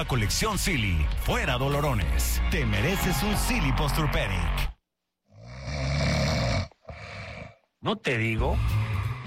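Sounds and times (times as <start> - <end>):
speech: 0.0 - 4.7, 7.8 - 8.9
loud rough snore: 5.3 - 7.7.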